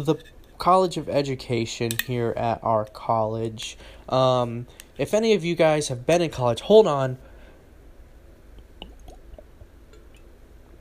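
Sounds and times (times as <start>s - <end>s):
speech: 0.0s - 7.3s
soft hiss: 0.0s - 10.7s
sipping and gulping Ouachita Mountain water from a bottle: 8.6s - 10.3s.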